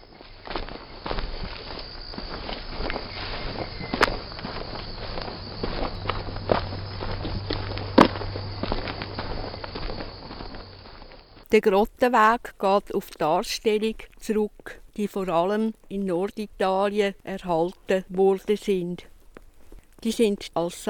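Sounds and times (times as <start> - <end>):
footsteps walking on a pilgrimage path: 0.0 - 20.8
low hum: 2.2 - 11.4
speech: 11.5 - 19.1, 20.0 - 20.8.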